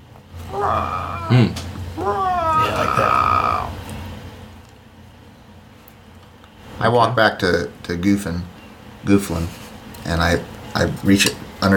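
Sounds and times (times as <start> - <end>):
voice imitating a crying baby animal's deep roar: 0.5 - 3.9
speech: 0.7 - 1.7, 6.8 - 11.7.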